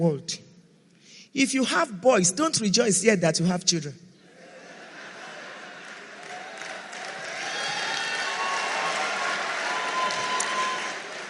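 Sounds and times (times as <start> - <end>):
speech: 0.0 - 0.4, 1.3 - 4.1
laughter: 4.3 - 6.9
crowd applauding with dense overlapping clapping: 5.5 - 11.2.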